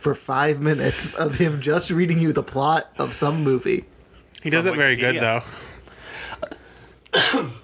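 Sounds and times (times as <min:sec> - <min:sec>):
hiss: 0:00.0 - 0:07.6
speech: 0:00.0 - 0:07.6
faint breathy clicks: 0:05.8 - 0:07.1
man clearing throat: 0:06.4 - 0:07.6.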